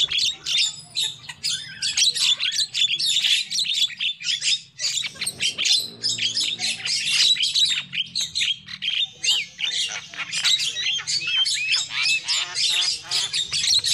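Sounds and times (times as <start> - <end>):
lovebird chatter used as a lure call: 0.0 - 13.9.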